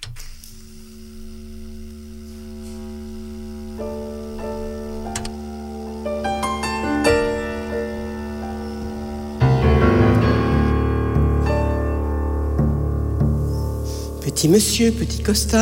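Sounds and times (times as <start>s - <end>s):
piano in a live song intro: 2.4s - 15.6s
cello in a live song intro: 2.7s - 15.6s
speech: 14.4s - 15.6s.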